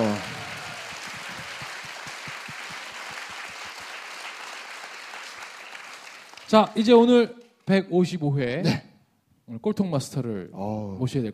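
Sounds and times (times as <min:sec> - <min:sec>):
audience applause: 0:00.0 - 0:06.8
speech: 0:06.5 - 0:08.8, 0:09.5 - 0:11.3.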